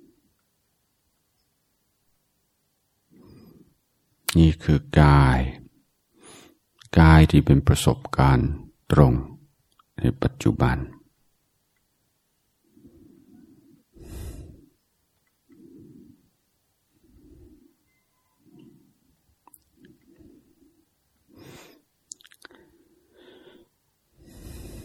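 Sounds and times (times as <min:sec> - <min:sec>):
speech: 0:04.4 - 0:05.6, 0:07.0 - 0:09.3, 0:10.0 - 0:11.0
person breathing in and out: 0:12.6 - 0:14.8, 0:15.5 - 0:17.8, 0:18.4 - 0:24.8.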